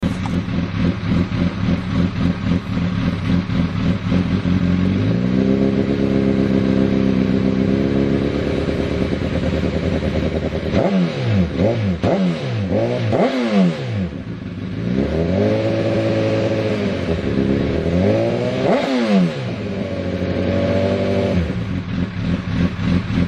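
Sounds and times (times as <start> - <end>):
Honda CBR1000RR motorcycle slip-on exhaust sound: 0.0 - 23.2.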